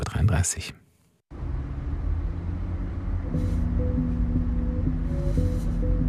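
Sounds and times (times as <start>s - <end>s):
speech: 0.4s - 0.8s
nearly full minibus engine rumble driving through Cologne Germany: 1.3s - 6.0s
faint hiss of passing traffic: 1.7s - 6.0s.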